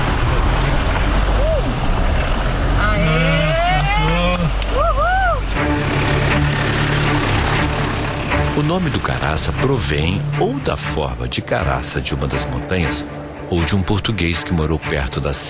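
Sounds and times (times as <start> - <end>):
car engine accelerating up a rough slope over stones: 0.0 - 15.4
people calling out: 2.8 - 5.5
speech: 8.8 - 15.4.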